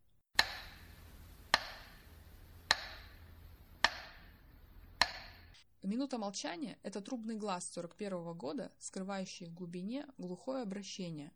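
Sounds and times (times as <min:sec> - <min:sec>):
metronome on the radio ticking: 0:00.4 - 0:05.6
faint low hum: 0:00.4 - 0:05.9
speech: 0:05.8 - 0:11.3.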